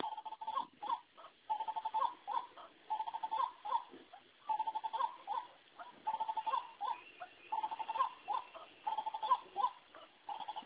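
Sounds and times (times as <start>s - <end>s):
White-breasted waterhen giving rapid repeated croaks: 0.0s - 10.6s.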